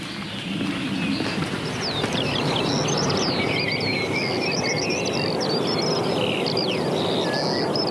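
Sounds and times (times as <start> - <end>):
Eurasian skylark singing while hanging in the air above heathland: 0.5 - 7.8.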